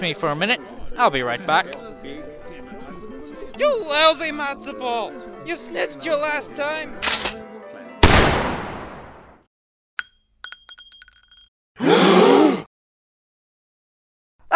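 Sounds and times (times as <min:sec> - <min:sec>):
speech: 0:00.0 - 0:02.3, 0:03.6 - 0:07.1
gunshot: 0:08.0 - 0:09.3
light clinking: 0:10.0 - 0:11.5.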